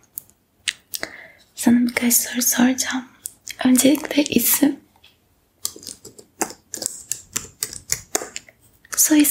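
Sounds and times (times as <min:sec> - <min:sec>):
speech: 0:01.6 - 0:04.8, 0:09.1 - 0:09.2
typing on a laptop keyboard: 0:05.6 - 0:08.4.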